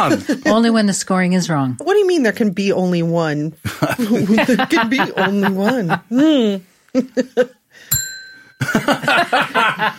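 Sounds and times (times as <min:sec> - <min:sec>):
speech: 0:00.0 - 0:08.0, 0:08.6 - 0:09.9
laughter: 0:03.6 - 0:06.1, 0:08.6 - 0:09.9
small bell ringing on a table: 0:07.9 - 0:09.2.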